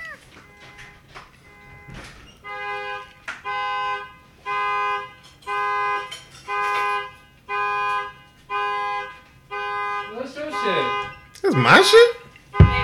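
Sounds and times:
truck alarm blaring in electronic bursts: 0:00.4 - 0:12.8
speech: 0:11.6 - 0:12.2.

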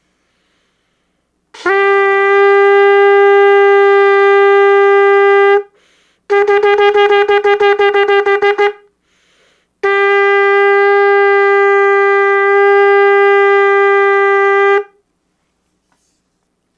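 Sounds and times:
shofar blasts: 0:01.6 - 0:08.9, 0:09.8 - 0:15.0.

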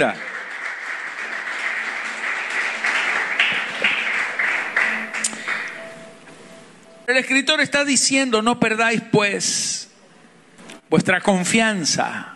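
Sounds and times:
speech: 0:00.0 - 0:00.3, 0:07.1 - 0:09.8, 0:10.9 - 0:12.3
crowd applauding after a scripture reading: 0:00.0 - 0:06.0.

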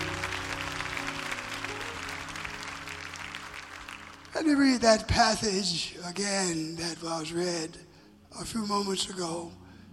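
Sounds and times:
large crowd applauding in a reverberant room: 0:00.0 - 0:05.2
speech: 0:04.4 - 0:09.6.

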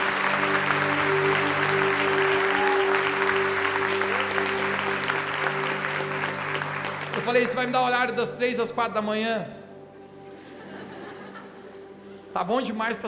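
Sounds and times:
audience applause: 0:00.0 - 0:08.0
speech: 0:07.3 - 0:09.6, 0:12.4 - 0:13.0
laughter: 0:10.3 - 0:12.2.

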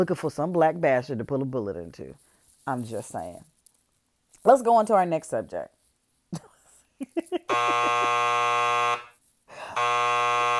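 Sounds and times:
speech: 0:00.0 - 0:03.5, 0:04.4 - 0:09.1
loud harsh buzzer: 0:07.5 - 0:10.5.

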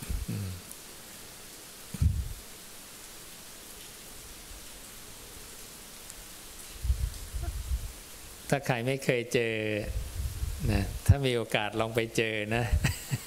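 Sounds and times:
heavy rain with hail on a parked car: 0:00.0 - 0:13.2
speech: 0:08.5 - 0:10.0, 0:10.6 - 0:13.2.

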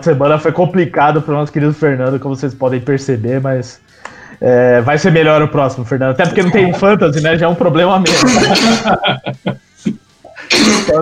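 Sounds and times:
speech: 0:00.0 - 0:11.0
person coughing: 0:06.2 - 0:06.8, 0:08.0 - 0:09.2, 0:09.9 - 0:11.0
laughter: 0:06.2 - 0:07.2, 0:08.1 - 0:10.5.

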